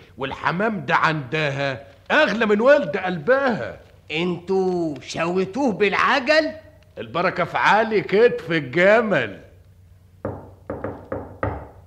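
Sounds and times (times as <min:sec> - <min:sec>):
speech: 0:00.2 - 0:09.5
firm dull resonant knocking on a door: 0:10.2 - 0:11.8.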